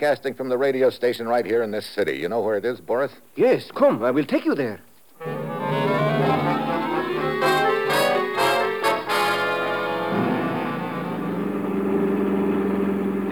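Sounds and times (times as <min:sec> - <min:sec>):
speech: 0:00.0 - 0:05.3
car engine humming while driving through a city: 0:05.2 - 0:13.3.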